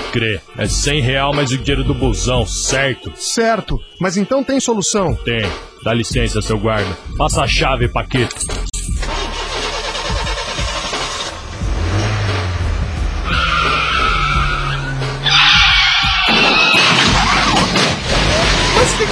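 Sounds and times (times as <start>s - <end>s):
speech: 0.1s - 8.7s
car engine revving: 8.9s - 16.3s, 17.2s - 19.0s
tires skidding and screeching: 9.0s - 19.0s.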